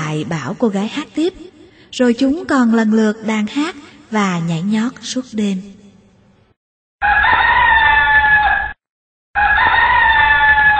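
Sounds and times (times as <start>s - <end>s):
speech: 0.1s - 5.8s
jungle fowl crowing: 7.0s - 8.8s, 9.4s - 10.7s.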